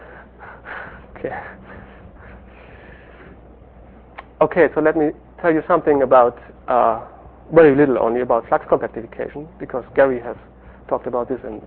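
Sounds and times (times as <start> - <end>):
slow deliberate breathing: 0.0 - 3.6, 10.5 - 10.9
speech: 1.2 - 1.9, 4.4 - 11.6.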